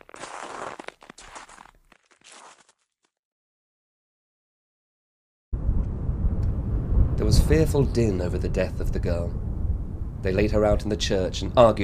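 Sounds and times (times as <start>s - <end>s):
footsteps crunching in snow: 0.0s - 3.1s
loud low rumbling noise: 5.6s - 11.8s
speech: 7.2s - 9.5s, 10.2s - 11.8s.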